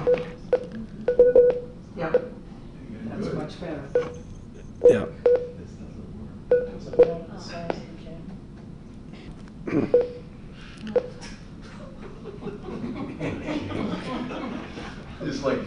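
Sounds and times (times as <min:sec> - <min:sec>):
phone giving off short electronic beeps: 0:00.0 - 0:02.3, 0:04.0 - 0:04.2, 0:04.8 - 0:05.6, 0:06.5 - 0:07.1, 0:09.9 - 0:10.3, 0:10.9 - 0:11.2
laughter: 0:11.6 - 0:15.6.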